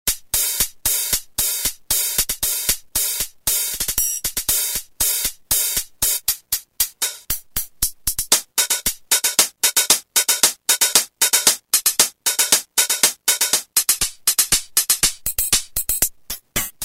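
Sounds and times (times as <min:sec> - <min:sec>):
drum machine hi-hat: 0:00.1 - 0:16.8.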